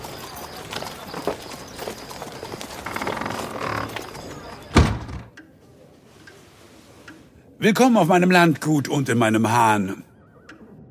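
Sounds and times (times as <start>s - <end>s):
horses walking as they are led back to the stable: 0.0s - 4.7s
speech: 7.6s - 10.1s.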